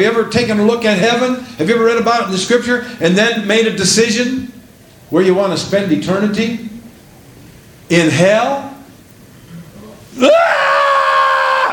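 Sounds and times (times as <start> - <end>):
speech: 0.0 - 6.7, 7.9 - 8.7, 10.2 - 10.6
demons screaming: 10.2 - 11.7.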